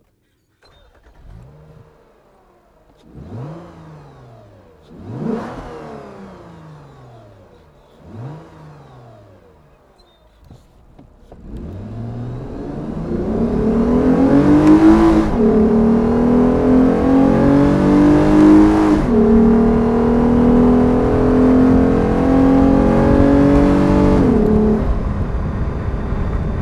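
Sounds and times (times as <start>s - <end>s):
Lexus GS350 F Sport car: 0.0s - 26.6s.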